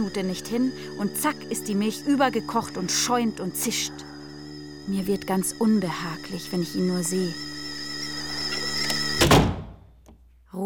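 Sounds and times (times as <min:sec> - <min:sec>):
speech: 0:00.0 - 0:04.1, 0:04.8 - 0:07.5
steady tonal hum: 0:00.0 - 0:09.2
classroom door slammed shut by an angry schoolboy: 0:09.1 - 0:09.8.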